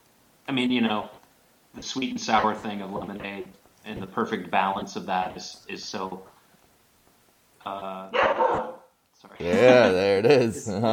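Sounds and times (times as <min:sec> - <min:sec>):
speech: 0:00.5 - 0:01.2, 0:01.8 - 0:06.3, 0:07.6 - 0:10.9
little puppy barking: 0:08.2 - 0:08.8.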